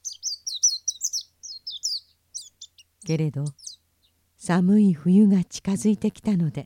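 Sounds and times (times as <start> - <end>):
small bird singing high chirping notes: 0.0 - 4.5
speech: 3.0 - 3.6, 4.4 - 6.6.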